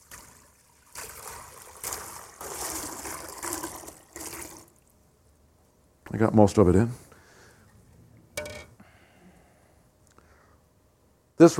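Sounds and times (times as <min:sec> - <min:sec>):
water pouring into a bowl: 0:00.0 - 0:04.9
speech: 0:06.1 - 0:07.0, 0:11.4 - 0:11.5.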